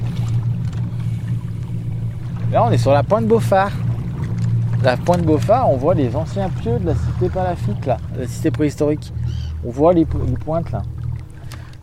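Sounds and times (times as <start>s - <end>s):
small boat engine at full speed on water: 0.0s - 11.8s
speech: 2.5s - 3.8s, 4.8s - 11.0s.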